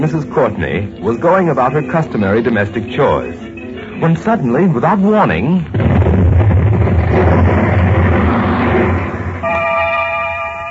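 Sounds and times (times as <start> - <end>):
speech: 0.0 - 3.4, 4.0 - 6.0
explosion blast during household chores: 5.7 - 9.7.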